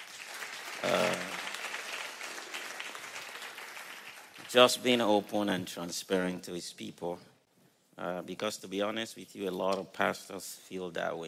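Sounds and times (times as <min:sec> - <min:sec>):
audience applause at a church service: 0:00.0 - 0:04.5
speech: 0:00.8 - 0:01.3, 0:04.5 - 0:07.3, 0:08.0 - 0:11.2.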